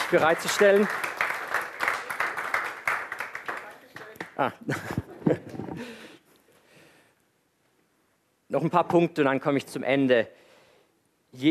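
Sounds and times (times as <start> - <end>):
audience applause: 0.0 - 4.6
speech: 0.1 - 1.2, 4.4 - 6.0, 8.5 - 10.4, 11.3 - 11.5.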